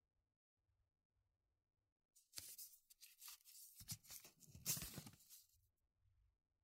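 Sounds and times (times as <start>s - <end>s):
torn paper strips pressed onto the sticky back of curing tape: 2.3s - 5.4s.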